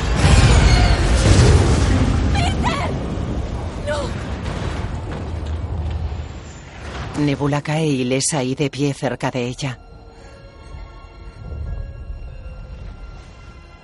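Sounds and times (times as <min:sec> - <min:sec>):
spaceship explosion in a science-fiction action film: 0:00.0 - 0:07.2
speech: 0:07.2 - 0:09.8.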